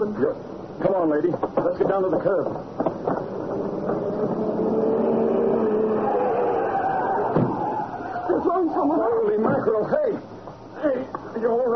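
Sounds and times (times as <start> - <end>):
speech: 0.0 - 4.4, 8.4 - 11.7
car engine roaring as the car approaches fast: 2.6 - 9.4.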